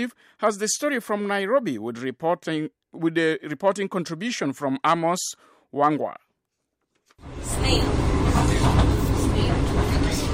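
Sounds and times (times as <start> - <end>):
speech: 0.0 - 6.2
interior rumble of a moving passenger train: 7.3 - 10.3.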